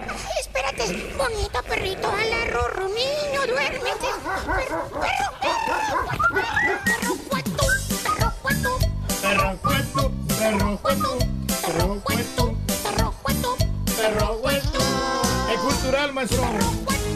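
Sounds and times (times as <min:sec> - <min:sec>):
people talking: 0:00.2 - 0:05.8, 0:06.9 - 0:13.1, 0:14.0 - 0:17.0
dog barking and yipping: 0:03.5 - 0:07.3.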